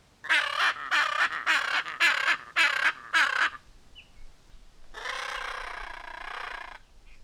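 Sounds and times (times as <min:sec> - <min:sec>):
macaw harsh raspy squawks: 0:00.3 - 0:03.6, 0:05.0 - 0:06.8.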